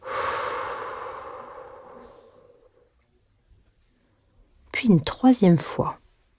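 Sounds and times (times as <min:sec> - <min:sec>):
deep breath in through the nose and out through the mouth: 0:00.0 - 0:03.0
speech: 0:04.8 - 0:06.0.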